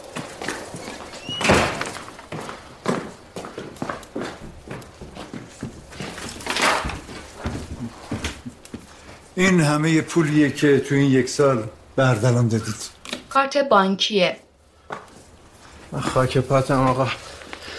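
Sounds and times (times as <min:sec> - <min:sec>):
firewood clattering crashes in a fireplace: 0:01.4 - 0:02.4, 0:06.0 - 0:07.4
firewood tossed into a fireplace knocking: 0:01.4 - 0:09.2
speech: 0:09.4 - 0:14.4, 0:15.9 - 0:17.2.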